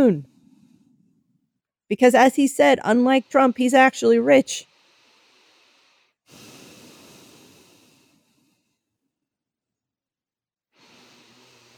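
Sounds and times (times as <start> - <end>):
speech: 0.0 - 0.3, 1.9 - 4.7
slow deep breathing exercises: 0.2 - 1.6, 4.6 - 9.2, 10.8 - 11.7.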